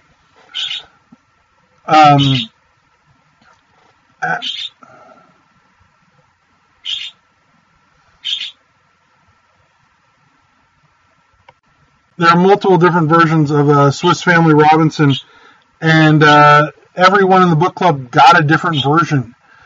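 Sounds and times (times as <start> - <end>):
pet bird chirping: 0.5 - 1.0, 2.0 - 2.6, 4.2 - 4.8, 6.8 - 7.2, 8.2 - 8.6
speech: 1.9 - 2.5, 12.2 - 19.4.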